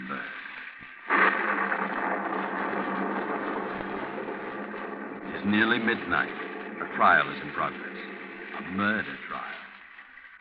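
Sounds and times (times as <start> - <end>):
thunderstorm thunder rumbling: 0.0 - 10.2
speech: 5.4 - 6.4, 7.0 - 9.2.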